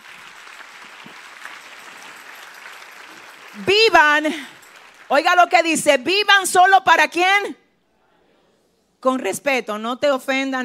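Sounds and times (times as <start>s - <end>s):
audience applauding: 0.0s - 5.6s
speech: 3.6s - 7.6s, 9.0s - 10.6s.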